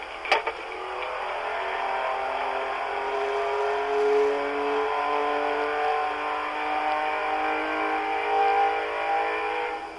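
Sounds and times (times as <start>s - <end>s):
race car engines revving at a neighbouring auto shop: 0.0s - 9.9s.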